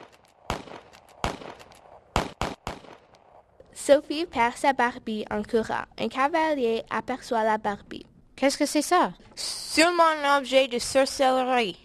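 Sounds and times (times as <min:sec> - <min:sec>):
handgun gunshots fired at fleeing children: 0:00.0 - 0:03.2
speech: 0:03.9 - 0:11.8.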